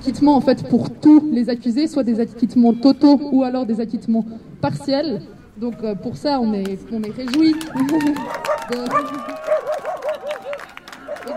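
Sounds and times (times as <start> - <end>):
speech: 0.0 - 9.4
dog barking in high-pitched yips: 8.3 - 11.3.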